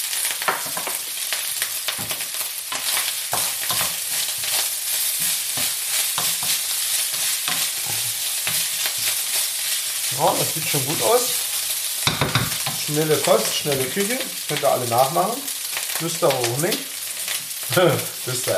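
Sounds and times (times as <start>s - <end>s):
scrambled egg sizzling in a frying pan: 0.0s - 18.5s
speech: 0.5s - 1.0s, 2.0s - 2.2s, 10.2s - 11.4s, 12.9s - 16.9s, 17.7s - 18.5s
scraping strokes stirring scrambled egg in a pan: 2.0s - 10.0s.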